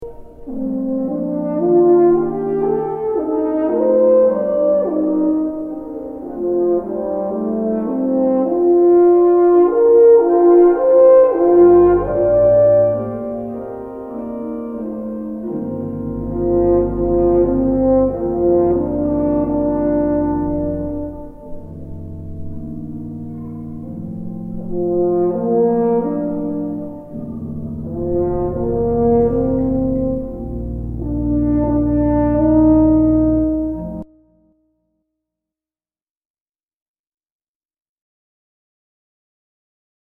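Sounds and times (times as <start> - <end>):
horn and organ piece: 0.1 - 34.1.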